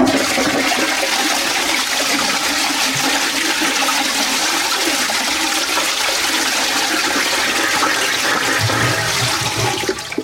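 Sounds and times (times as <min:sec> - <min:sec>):
toilet flushing: 0:00.0 - 0:10.2.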